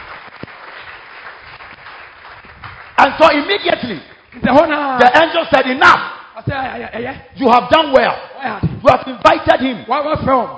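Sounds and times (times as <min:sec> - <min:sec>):
crowd clapping hands in applause: 0:00.0 - 0:04.8
speech: 0:03.0 - 0:10.5.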